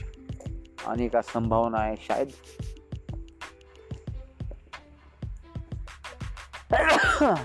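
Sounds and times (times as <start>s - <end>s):
steady rhythmic thumping beat with soft tones: 0.0s - 7.4s
speech: 0.8s - 2.7s, 7.2s - 7.4s
loud explosive sneeze: 6.7s - 7.4s.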